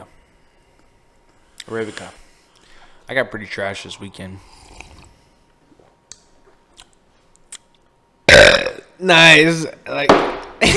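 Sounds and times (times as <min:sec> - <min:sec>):
speech: 0:01.7 - 0:02.2, 0:03.1 - 0:04.6, 0:09.0 - 0:10.7
loud rough burp after drinking arabica coffee: 0:08.3 - 0:09.0.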